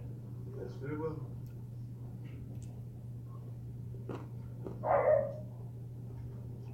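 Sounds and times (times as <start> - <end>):
steady low hum: 0.0 - 6.7
speech: 0.7 - 1.5
dog barking: 4.8 - 5.5.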